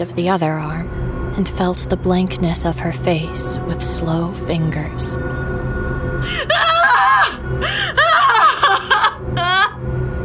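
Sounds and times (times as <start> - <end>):
speech: 0.0 - 5.4, 7.5 - 8.0
low steady hum: 0.0 - 10.2
woman screaming: 6.3 - 10.2.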